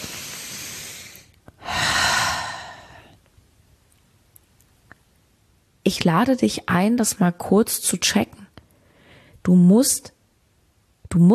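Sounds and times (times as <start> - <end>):
deep breathing in and out: 0.0 - 3.2
speech: 5.9 - 8.4, 9.5 - 10.2, 11.1 - 11.3.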